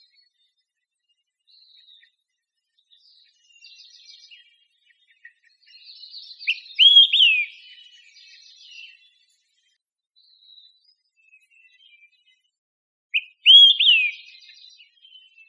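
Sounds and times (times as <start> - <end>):
olive-sided flycatcher sharp slurred calls in Costa Rica: 6.5 - 7.5, 13.2 - 14.2.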